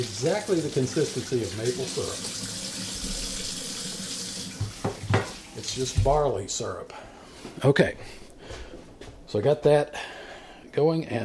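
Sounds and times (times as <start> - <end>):
speech: 0.0 - 2.5, 5.8 - 8.6, 9.3 - 10.2, 10.8 - 11.2
water running from a tap: 0.0 - 6.3.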